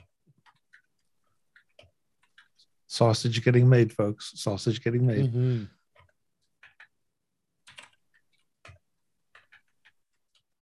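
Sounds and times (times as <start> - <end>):
computer keyboard typing with sharp key clicks: 0.0 - 2.8, 5.8 - 10.6
speech: 2.9 - 5.8.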